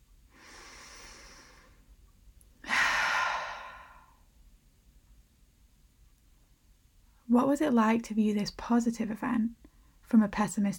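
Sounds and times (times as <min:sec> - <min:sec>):
deep slow breath during a guided relaxation exercise: 0:00.3 - 0:01.9, 0:02.6 - 0:04.3
speech: 0:07.3 - 0:10.7.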